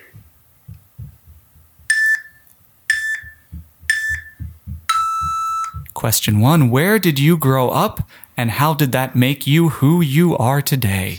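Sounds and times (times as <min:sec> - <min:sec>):
low rhythmic thumping pulse: 0:00.0 - 0:08.2
timer beeping with loud sharp electronic tones: 0:01.8 - 0:05.9
speech: 0:06.0 - 0:11.1.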